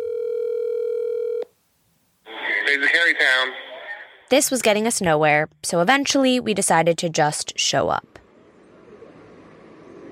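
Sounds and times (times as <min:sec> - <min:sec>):
telephone dial tone: 0:00.0 - 0:01.5
speech: 0:02.7 - 0:03.6, 0:04.3 - 0:08.2.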